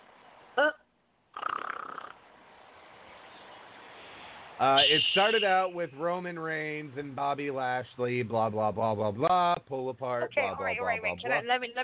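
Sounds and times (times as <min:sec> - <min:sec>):
low steady hiss: 0:00.0 - 0:11.8
nasal snort: 0:01.4 - 0:02.2
speech: 0:04.6 - 0:11.8.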